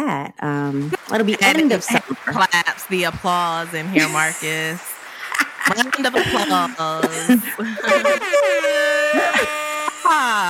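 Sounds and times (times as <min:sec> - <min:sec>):
speech: 0:00.1 - 0:04.9, 0:05.6 - 0:10.4
laughter: 0:00.8 - 0:10.4
air horn sound effect blasts: 0:08.6 - 0:10.3.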